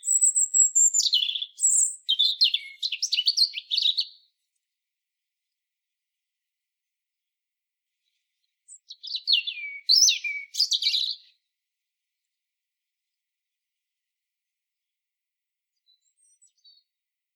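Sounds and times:
European robin Erithacus rubecula singing: 0:00.0 - 0:04.3, 0:08.7 - 0:11.4.

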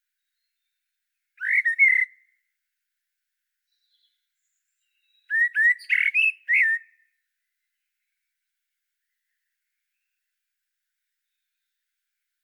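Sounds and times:
common blackbird Turdus merula singing fluty phrases: 0:01.4 - 0:02.3, 0:03.7 - 0:07.0.

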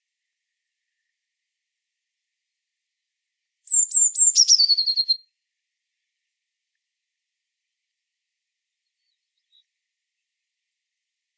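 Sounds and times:
Eurasian blue tit Cyanistes caeruleus whistled phrase ending in a fast trill: 0:03.7 - 0:05.2.

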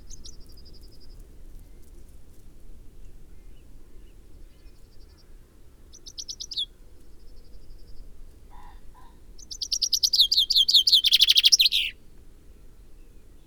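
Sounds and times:
Common Chaffinch Fringilla coelebs trilling song: 0:05.9 - 0:06.8, 0:09.4 - 0:12.0.

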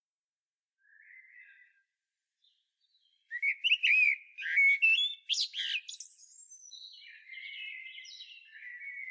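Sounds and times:
common blackbird Turdus merula singing: 0:02.9 - 0:09.0.

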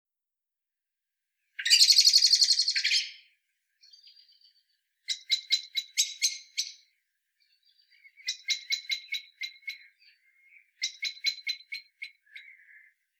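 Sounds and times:
common blackbird calling with buzzy bursts and chink notes: 0:01.6 - 0:13.0.

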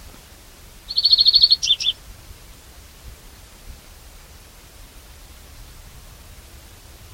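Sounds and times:
European greenfinch calling: 0:00.8 - 0:02.0.

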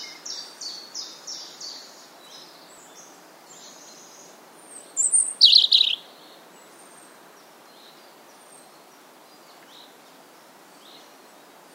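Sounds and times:
steady background hiss: 0:00.0 - 0:11.7
European robin Erithacus rubecula singing short high thin notes: 0:05.0 - 0:06.0.

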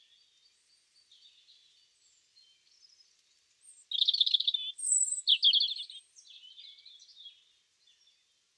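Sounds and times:
Erithacus rubecula European robin singing: 0:03.7 - 0:07.4.

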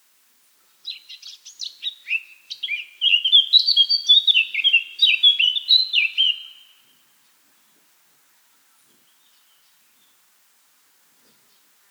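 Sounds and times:
Eurasian blackcap Sylvia atricapilla singing: 0:00.9 - 0:06.7.

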